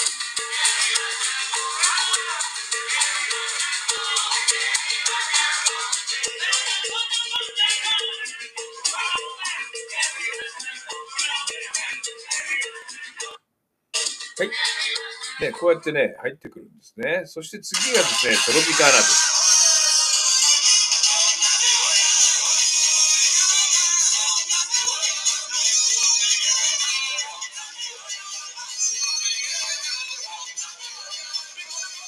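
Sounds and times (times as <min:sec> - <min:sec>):
bright shaking percussion: 0:00.0 - 0:13.4, 0:14.0 - 0:15.6, 0:17.8 - 0:32.0
speech: 0:14.4 - 0:14.7, 0:15.4 - 0:19.4
live salsa band playing: 0:17.8 - 0:22.2.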